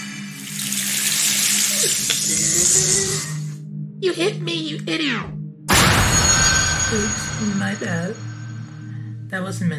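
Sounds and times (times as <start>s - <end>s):
water pouring and splashing: 0.3s - 2.6s
speech: 4.0s - 5.4s, 6.9s - 8.2s, 9.3s - 9.7s
low hum: 5.7s - 9.4s.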